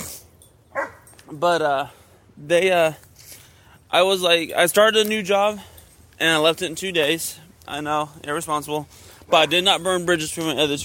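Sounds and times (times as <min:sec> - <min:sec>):
dog barking excitedly: 0:00.7 - 0:01.1
speech: 0:01.3 - 0:03.0, 0:03.9 - 0:10.8.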